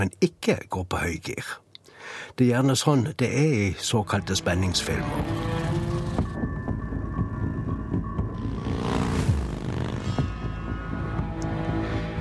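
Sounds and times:
speech: 0.0s - 5.6s
motorcycle engine throbbing heading up into the mountains: 4.4s - 12.1s.

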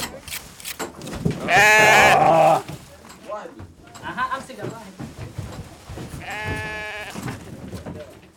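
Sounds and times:
rustling movement: 0.0s - 8.3s
sheep bleating: 1.4s - 2.7s, 6.2s - 7.2s
speech: 1.5s - 1.9s.

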